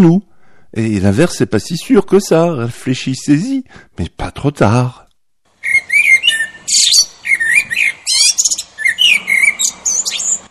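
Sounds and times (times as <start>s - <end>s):
speech: 0.0s - 5.0s
blackbird singing from its perch: 5.6s - 10.5s.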